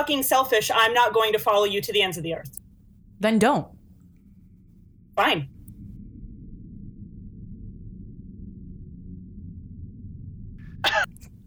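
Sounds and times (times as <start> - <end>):
speech: 0.0 - 2.6, 3.2 - 3.8, 5.2 - 5.5
steady low rumble: 0.0 - 11.4
single short cough: 10.8 - 11.2.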